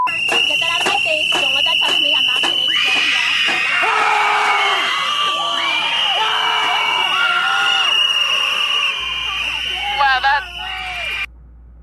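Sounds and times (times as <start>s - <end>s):
crowd of protesters screaming and yelling in unison: 0.1s - 11.3s.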